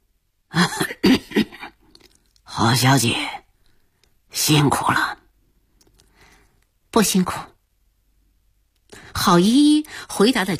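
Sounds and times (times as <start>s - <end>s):
cigar-smoking man coughing hoarsely: 0.6s - 1.8s
speech: 2.6s - 3.4s, 4.5s - 5.2s, 7.0s - 7.5s, 9.2s - 10.5s.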